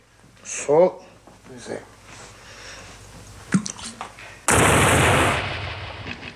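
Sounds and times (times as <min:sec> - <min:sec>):
speech: 0:00.5 - 0:01.9
cartoonish film explosion sound effect: 0:04.5 - 0:06.3.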